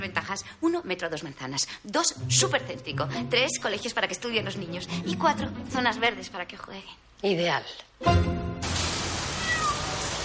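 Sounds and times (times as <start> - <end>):
speech: 0.2 - 8.4
steady hiss of rain: 8.6 - 10.2
cat meowing on the balcony of an attic flat: 9.3 - 10.1.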